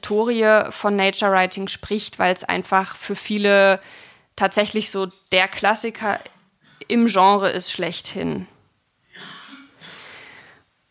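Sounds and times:
speech: 0:00.1 - 0:08.5
man coughing: 0:09.1 - 0:10.2.

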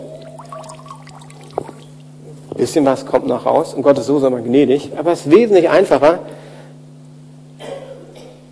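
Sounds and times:
steady low hum: 0:00.0 - 0:08.5
water squeezed out of a work sponge dribbling and dripping: 0:00.3 - 0:01.9
speech: 0:02.6 - 0:06.4.

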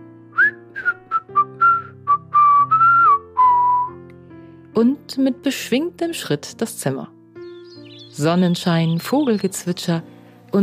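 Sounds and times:
person whistling a cheerful tune: 0:00.4 - 0:04.0
speech: 0:04.8 - 0:07.2, 0:08.2 - 0:10.6.

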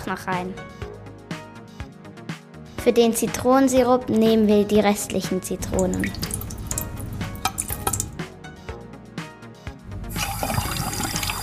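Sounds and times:
speech: 0:00.1 - 0:00.8, 0:02.8 - 0:06.4
water pouring into a cooking pot: 0:05.6 - 0:08.2, 0:10.1 - 0:11.4.

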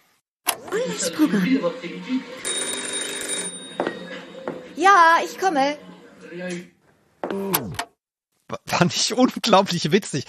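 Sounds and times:
speech: 0:00.6 - 0:02.5, 0:04.8 - 0:06.7, 0:07.3 - 0:07.8, 0:08.6 - 0:10.2
telephone ringing with a bright electronic trill: 0:02.2 - 0:04.8.

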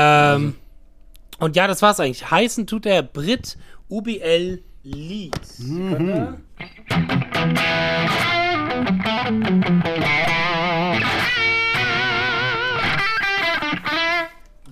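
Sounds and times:
speech: 0:00.0 - 0:00.6, 0:01.4 - 0:11.2
electric guitar through a British-voiced amp with light crunchy distortion: 0:06.6 - 0:14.4.

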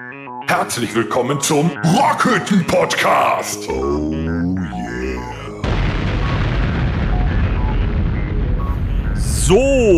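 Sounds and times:
speech: 0:00.5 - 0:05.0, 0:09.5 - 0:09.9
crackling debris from explosion: 0:05.6 - 0:09.2
explosion sound effect with low rumble: 0:05.6 - 0:09.4.

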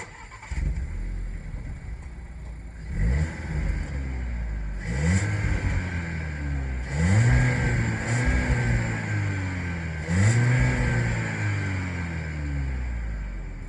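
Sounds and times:
Spanish car engine starting and revving over a throaty idle: 0:00.0 - 0:13.6.

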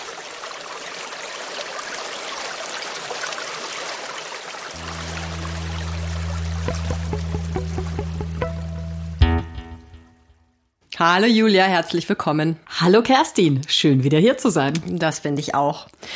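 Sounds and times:
flowing water: 0:00.0 - 0:09.2
deep sustained hum: 0:04.8 - 0:09.9
soft plucked notes: 0:04.8 - 0:10.4
speech: 0:11.0 - 0:16.1.

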